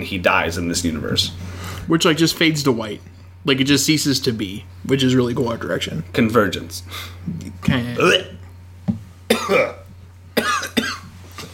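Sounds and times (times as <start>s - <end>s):
speech: 0.0s - 8.4s, 9.5s - 9.8s
low steady hum: 0.0s - 11.5s
person coughing: 8.0s - 8.4s, 9.3s - 11.5s.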